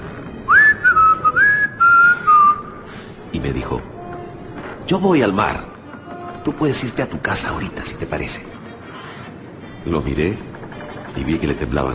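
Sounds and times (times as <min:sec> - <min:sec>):
man whistling a tune at the helm of a speeding boat: 0:00.5 - 0:02.8
speech: 0:03.4 - 0:04.0, 0:04.9 - 0:05.7, 0:06.4 - 0:08.6, 0:09.8 - 0:10.5, 0:11.2 - 0:11.9.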